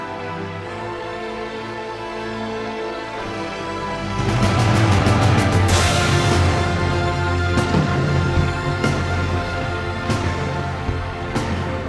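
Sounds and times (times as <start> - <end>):
cinematic orchestral music: 0.0 - 11.8
epic drums: 4.0 - 11.8.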